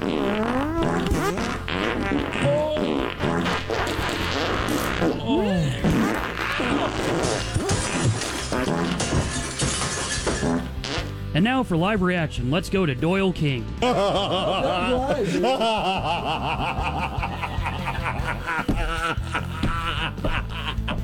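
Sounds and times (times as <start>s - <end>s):
montage of squeaky fart sounds: 0.0s - 11.3s, 18.4s - 20.4s
laughter: 5.0s - 8.1s, 13.8s - 21.0s
speech: 11.4s - 17.3s.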